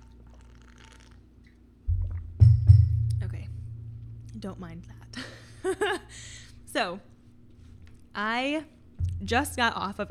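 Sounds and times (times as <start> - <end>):
person sipping a drink of water: 0.0 - 1.7
person gulping and swallowing: 0.0 - 2.3
speech: 4.4 - 7.1, 8.2 - 10.0.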